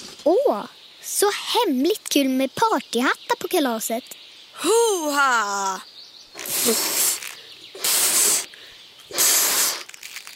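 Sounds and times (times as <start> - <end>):
speech: 0.2 - 7.0
strong breathy puffs of air: 6.4 - 10.0.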